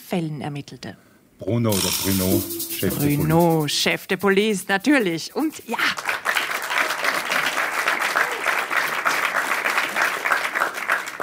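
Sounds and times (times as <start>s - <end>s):
speech: 0.1s - 6.1s
large audience applause: 5.9s - 11.2s.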